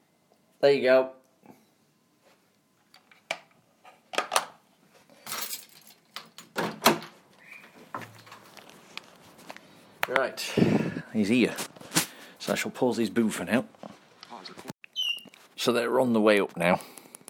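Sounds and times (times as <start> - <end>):
speech: 0.6 - 1.2, 10.1 - 11.7, 12.5 - 14.7, 15.6 - 17.0
door being unlatched and opened: 6.2 - 7.2.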